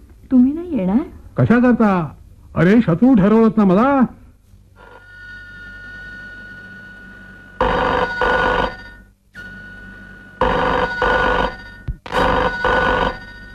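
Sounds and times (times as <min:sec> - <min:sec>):
speech: 0:00.3 - 0:04.2
telephone ringing: 0:04.8 - 0:13.5.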